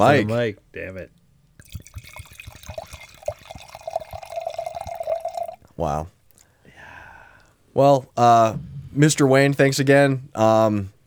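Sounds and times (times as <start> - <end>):
speech: 0.0 - 1.8, 5.8 - 6.2, 7.8 - 11.0
small splashes and drips: 1.4 - 6.5
wine pouring into a glass: 1.5 - 6.0.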